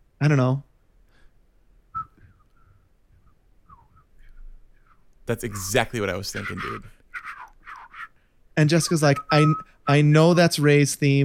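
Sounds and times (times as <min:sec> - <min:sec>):
speech: 0:00.2 - 0:00.7, 0:05.3 - 0:07.0, 0:08.6 - 0:11.2
soft airy whistle through the teeth: 0:01.9 - 0:05.7, 0:06.4 - 0:08.2, 0:08.8 - 0:10.1.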